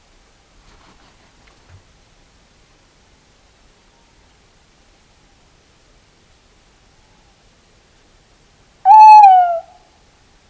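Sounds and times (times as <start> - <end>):
tawny owl giving a clear hoot: 8.8 - 9.8.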